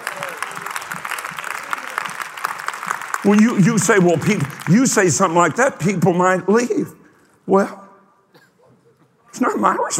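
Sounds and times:
a few people clapping: 0:00.0 - 0:06.0
speech: 0:03.2 - 0:07.8, 0:09.4 - 0:09.9.

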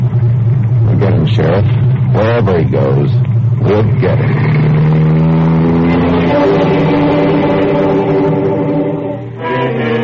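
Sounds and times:
car engine droning and revving: 0:00.0 - 0:10.0
speech: 0:01.3 - 0:05.0.

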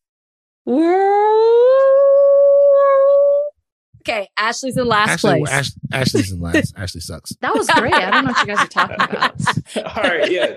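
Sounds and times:
speech: 0:00.7 - 0:01.0, 0:04.1 - 0:10.5
person's voice imitating a whale call: 0:00.7 - 0:03.5
laughter: 0:04.8 - 0:10.5.

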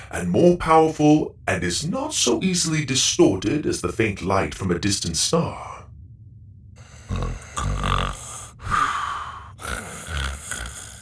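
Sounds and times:
speech: 0:00.1 - 0:05.8
person pretending to snore: 0:06.8 - 0:11.0.

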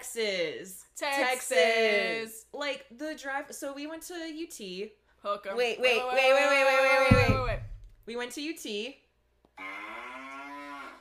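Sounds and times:
speech: 0:00.0 - 0:09.0, 0:09.6 - 0:09.9
cow mooing: 0:09.6 - 0:10.9.

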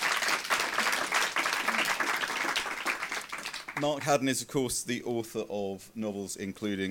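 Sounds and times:
room full of people applauding: 0:00.0 - 0:04.0
speech: 0:03.8 - 0:06.8.

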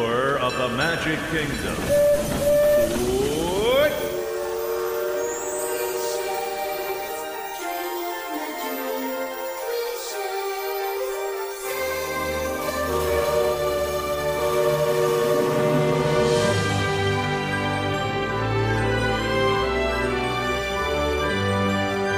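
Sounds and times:
steam train chugging and hissing while departing: 0:00.0 - 0:22.1
speech: 0:00.5 - 0:03.1
steam train whistle blast: 0:01.8 - 0:18.2.

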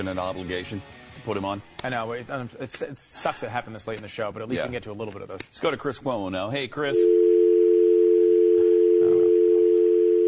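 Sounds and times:
speech: 0:00.0 - 0:07.2
steady telephone dial tone: 0:07.2 - 0:10.2.

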